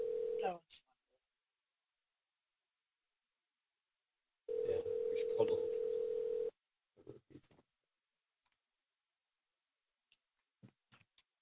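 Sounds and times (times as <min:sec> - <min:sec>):
phone ringing tone: 0:00.0 - 0:00.5, 0:04.5 - 0:06.5
speech: 0:00.5 - 0:00.9, 0:05.3 - 0:05.6.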